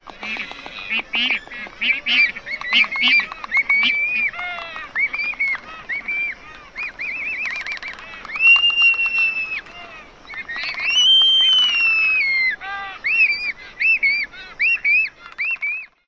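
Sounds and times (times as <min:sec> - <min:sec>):
Black-footed Albatross clicking: 0:00.0 - 0:12.0
Black-footed Albatross social calls: 0:00.0 - 0:16.0.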